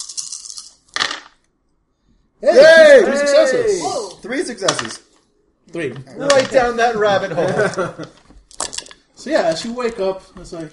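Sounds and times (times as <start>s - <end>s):
small hard dice rolled onto a table in a tabletop role-playing game: 0.0s - 1.4s, 8.5s - 9.0s
speech: 2.4s - 5.1s, 5.7s - 8.2s, 9.2s - 10.7s
laughter: 6.9s - 8.3s.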